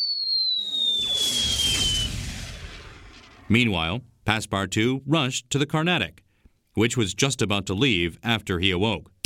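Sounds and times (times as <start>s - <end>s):
thin high whistle falling in pitch: 0.0s - 3.4s
small cannon firing: 0.6s - 3.5s
speech: 3.5s - 6.2s, 6.8s - 9.1s.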